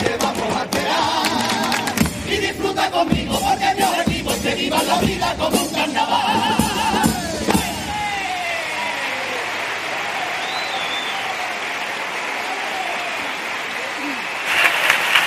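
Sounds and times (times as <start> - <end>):
audience shouting and cheering: 0.0 - 15.2
large audience applauding: 7.0 - 15.2.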